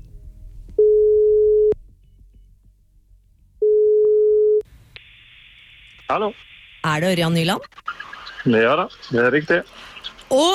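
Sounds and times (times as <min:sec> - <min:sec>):
telephone call ringing tone: 0:00.8 - 0:01.8, 0:03.6 - 0:04.6
speech: 0:06.1 - 0:10.5.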